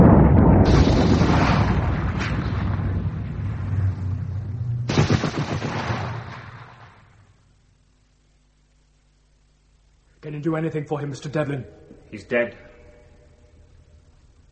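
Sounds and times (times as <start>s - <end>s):
gunfire in a wartime fight: 0.0s - 3.4s, 4.8s - 7.3s
grenade explosion in a wartime fight: 0.0s - 7.3s
speech: 10.4s - 12.7s.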